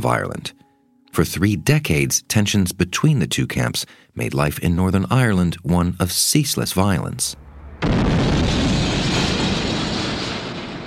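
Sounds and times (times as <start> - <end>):
speech: 0.0 - 8.2
bomb explosion in a street in Northern Ireland: 7.4 - 10.8.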